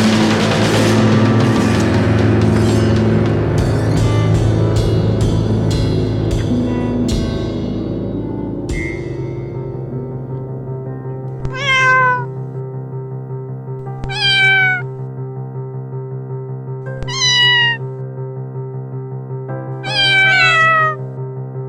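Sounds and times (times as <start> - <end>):
steady sustained musical drone: 0.0 - 13.8
cat meowing: 11.4 - 12.6, 13.8 - 15.0, 17.0 - 17.9, 19.8 - 21.0.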